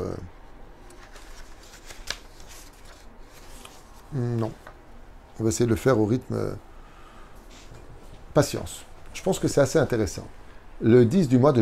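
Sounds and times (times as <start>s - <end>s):
many sheets of paper rustling and shuffling: 0.8s - 4.7s
paper sheet snapping: 0.9s - 2.8s
speech: 5.4s - 6.7s, 8.4s - 11.5s.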